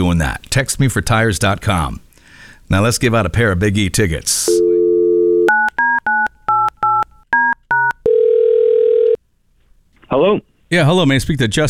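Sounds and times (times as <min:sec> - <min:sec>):
speech: 0:00.0 - 0:02.0, 0:02.7 - 0:04.7, 0:10.1 - 0:11.6
phone dial tone: 0:04.6 - 0:09.2
phone keypad beeps: 0:05.5 - 0:08.1.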